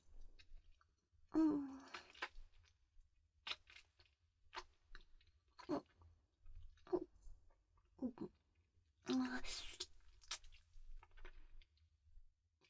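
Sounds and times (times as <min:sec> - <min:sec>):
wet open-mouthed chewing with smacking: 0:01.5 - 0:02.8, 0:03.4 - 0:07.1, 0:09.1 - 0:11.8.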